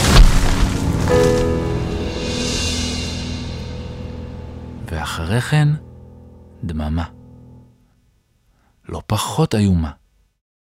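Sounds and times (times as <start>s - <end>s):
large cedar tree cracking and crashing to the ground: 0.0s - 1.9s
deep rolling rumble: 0.0s - 7.6s
speech: 5.3s - 5.9s, 6.6s - 7.2s, 8.9s - 10.0s.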